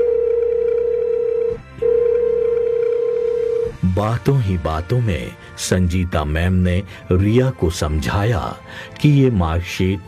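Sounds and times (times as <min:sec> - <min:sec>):
phone ringing with a loud steady electronic tone: 0:00.0 - 0:03.8
speech: 0:04.0 - 0:10.0.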